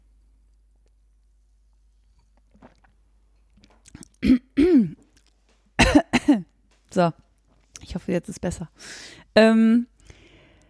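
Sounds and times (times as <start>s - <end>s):
person sipping a drink: 1.7s - 4.2s
person swallowing: 2.3s - 5.4s
speech: 4.2s - 4.5s, 7.0s - 7.2s, 7.8s - 9.9s.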